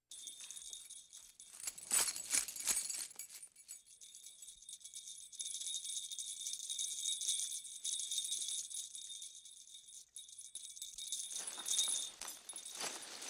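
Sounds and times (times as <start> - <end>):
sleigh bells jingling: 0.0 - 13.2.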